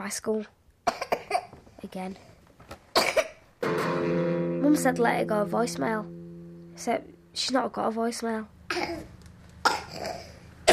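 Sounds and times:
speech: 0.0 - 1.1, 1.9 - 2.3, 3.7 - 6.2, 6.8 - 9.1
person coughing harshly: 3.0 - 3.4, 9.7 - 10.7.

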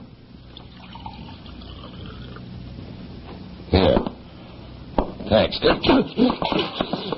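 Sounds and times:
water poured from a carafe into a glass: 0.5 - 2.4
speech: 5.3 - 7.0.

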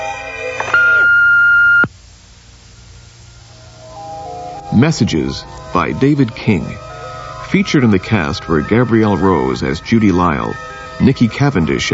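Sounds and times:
faint hiss: 0.0 - 11.9
single steady high-pitched electronic beep: 0.7 - 1.9
speech: 4.8 - 6.9, 7.5 - 11.9.

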